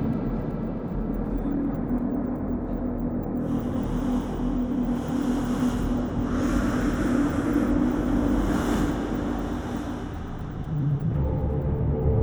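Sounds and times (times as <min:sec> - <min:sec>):
deep droning tone: 0:00.0 - 0:12.2
faint hum: 0:00.0 - 0:12.2
dense steady low rumble: 0:03.4 - 0:12.2.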